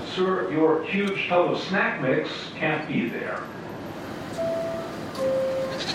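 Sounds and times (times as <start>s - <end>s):
speech: 0.2s - 3.6s
goat bleating at the closing doors of a subway train: 5.7s - 5.9s.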